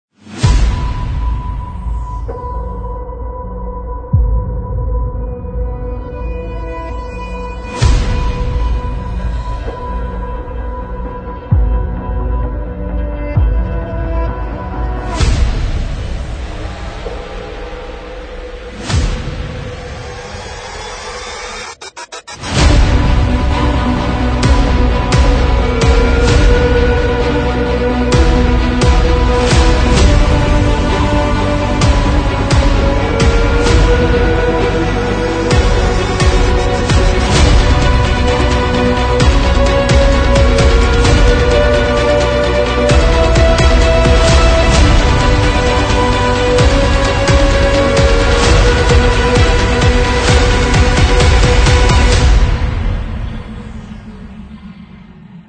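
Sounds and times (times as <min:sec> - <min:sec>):
epic hybrid cinematic trailer music: 0:00.1 - 0:55.4.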